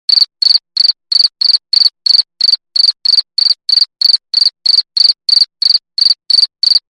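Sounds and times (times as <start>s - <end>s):
cricket chirping: 0.1s - 6.8s.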